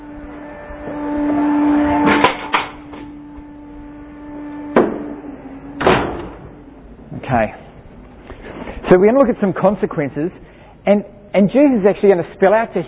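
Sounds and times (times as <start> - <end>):
steady low electrical hum: 0.0 - 12.8
door pushed shut indoors: 5.8 - 6.5
speech: 8.9 - 12.8.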